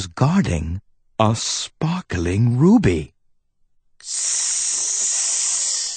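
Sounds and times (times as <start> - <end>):
speech: 0.0 - 3.2, 4.0 - 4.7
loud steady hiss: 4.0 - 5.9.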